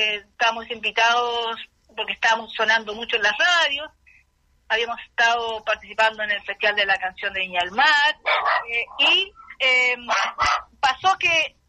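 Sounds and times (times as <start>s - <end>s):
speech: 0.0s - 4.0s, 4.7s - 11.6s
dog yipping indoors: 8.2s - 8.7s, 10.1s - 10.7s
dog barking indoors: 8.2s - 8.9s, 10.0s - 10.8s.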